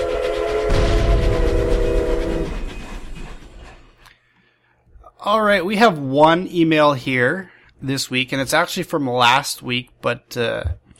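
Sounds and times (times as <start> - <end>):
tram train rumbling along the rails: 0.0 - 4.0
speech: 5.3 - 10.9.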